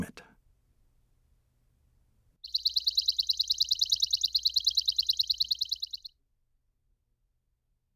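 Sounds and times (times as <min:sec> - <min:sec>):
bird calling in a rapid high-pitched trill: 0:02.4 - 0:06.1.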